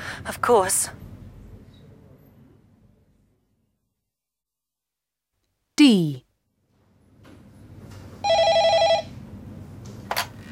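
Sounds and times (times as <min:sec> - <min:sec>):
speech: 0:00.3 - 0:01.0, 0:05.9 - 0:06.2
telephone ringing with rapid warbling electronic trill: 0:08.2 - 0:09.2.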